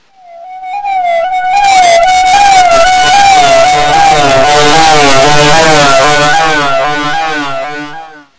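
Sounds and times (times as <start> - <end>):
distorted guitar noise: 0.0 - 8.3.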